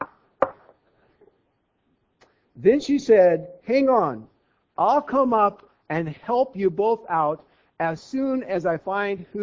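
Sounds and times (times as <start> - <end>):
knuckles knocking on a wooden surface: 0.0 - 0.8
speech: 2.6 - 9.4.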